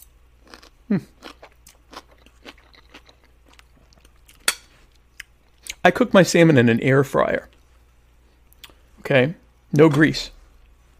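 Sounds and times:
person chewing and eating food: 0.4 - 5.8
speech: 0.9 - 1.4, 5.8 - 7.5, 9.1 - 10.4.

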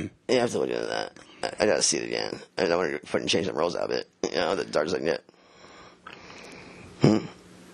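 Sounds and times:
speech: 0.0 - 5.3, 7.0 - 7.4
short throaty throat clearing: 7.0 - 7.4.

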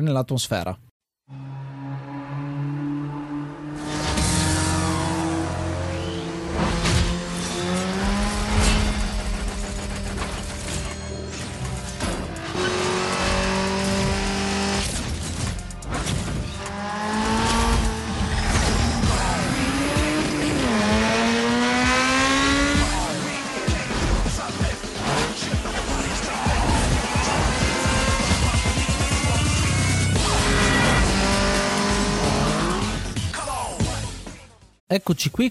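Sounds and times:
speech: 0.0 - 1.4, 34.9 - 35.5
video game racing car engine revving and shifting gears: 1.4 - 33.2
video game racing car tire squeals: 1.7 - 13.8, 15.5 - 20.7, 26.0 - 32.2.

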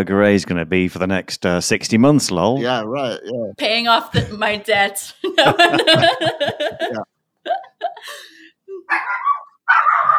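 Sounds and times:
speech: 0.0 - 8.3
laughter: 5.0 - 8.9
dog yapping and barking: 8.9 - 10.1.

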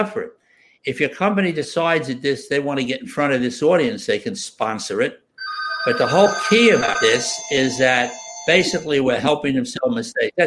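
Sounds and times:
speech: 0.0 - 5.2, 5.8 - 10.4
telephone ringing with a high electronic tone: 5.4 - 9.0.

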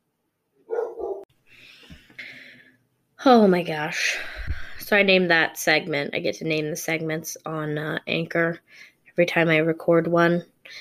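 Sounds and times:
dog barking: 0.6 - 1.3
dog yelping or whining: 0.7 - 1.3
speech: 3.2 - 4.3, 4.9 - 10.7.

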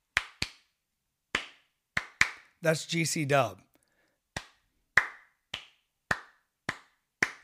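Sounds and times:
hand clapping: 0.1 - 0.7, 1.3 - 2.6, 4.3 - 7.4
speech: 2.6 - 3.7.

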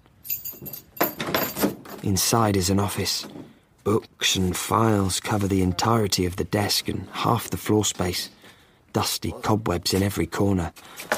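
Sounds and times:
bunch of keys jangling: 0.2 - 2.1
speech: 2.0 - 8.4, 9.0 - 11.1.

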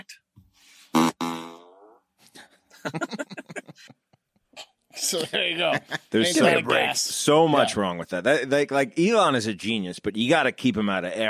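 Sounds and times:
buzzy fart sound effect from car external speaker: 1.0 - 1.7
laughter: 2.7 - 4.2, 5.0 - 7.0
speech: 2.8 - 3.3, 5.1 - 11.2.

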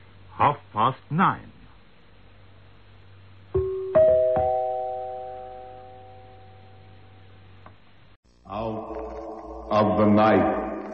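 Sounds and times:
speech: 0.4 - 1.5, 9.7 - 10.6
radio station time signal gong: 3.6 - 7.3, 8.5 - 10.9.

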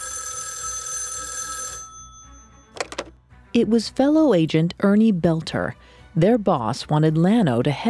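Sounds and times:
telephone bell ringing: 0.0 - 3.0
speech: 3.6 - 7.8.

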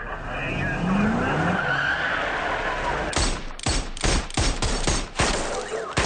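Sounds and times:
tires squealing in a film car chase: 0.0 - 3.2
car engines roaring in a film car chase: 0.0 - 4.4
rapid bursts of loud gunfire in a film shootout: 3.2 - 6.0.

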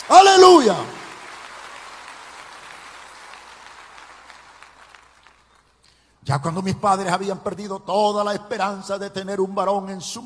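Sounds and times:
audience applause: 0.0 - 5.7
speech: 0.6 - 1.0, 6.3 - 10.2.

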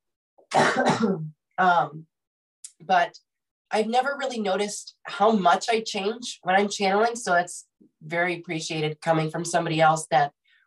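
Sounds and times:
person coughing and clearing throat: 0.4 - 1.4
speech: 0.5 - 2.1, 2.8 - 10.4.

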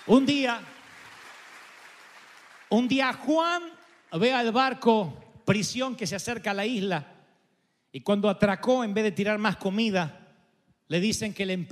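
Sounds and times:
speech: 0.0 - 0.7, 2.7 - 7.1, 7.9 - 10.2, 10.9 - 11.6
crowd applauding: 0.0 - 4.2.

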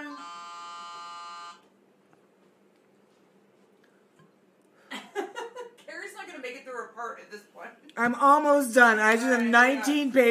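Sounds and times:
loud harsh game-show-style buzzer for a drinking game: 0.0 - 1.7
faint noise: 0.0 - 10.3
laughter: 4.9 - 5.8
speech: 7.0 - 10.3.

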